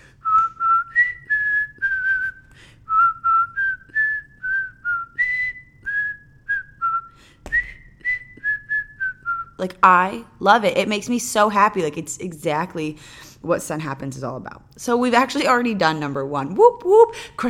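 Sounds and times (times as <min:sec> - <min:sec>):
whistled tune in podcast intro music: 0:00.2 - 0:09.6
speech: 0:09.6 - 0:17.4.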